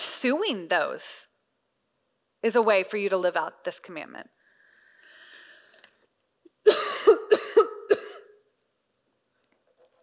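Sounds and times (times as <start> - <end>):
speech: 0.2 - 1.3, 2.4 - 4.4
speaker coughing during a church talk: 6.7 - 8.4.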